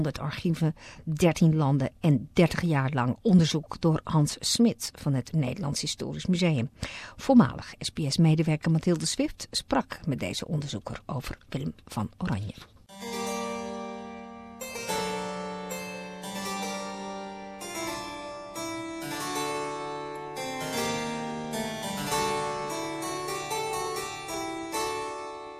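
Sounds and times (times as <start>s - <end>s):
speech: 0.0s - 12.7s
sixteenth-century instrumental music: 12.9s - 25.5s.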